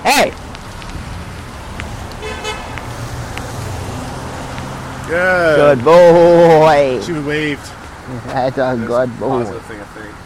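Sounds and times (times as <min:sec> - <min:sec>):
car traffic passing on road: 0:00.0 - 0:10.2
speech: 0:00.1 - 0:00.4, 0:05.1 - 0:10.2
car horn toot: 0:02.2 - 0:02.8.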